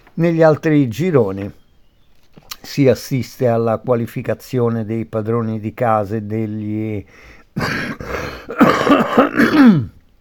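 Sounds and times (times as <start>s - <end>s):
speech: 0.2s - 1.6s, 2.7s - 10.0s
rough voiced hacking coughs: 7.6s - 10.0s
throat clearing: 7.6s - 10.0s.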